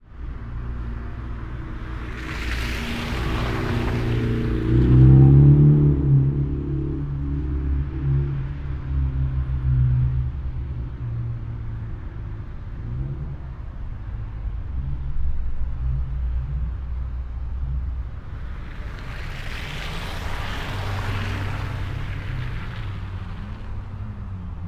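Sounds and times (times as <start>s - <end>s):
suburban traffic: 0.0s - 24.6s
car driving through a suburban puddle: 0.5s - 8.5s, 17.4s - 24.6s.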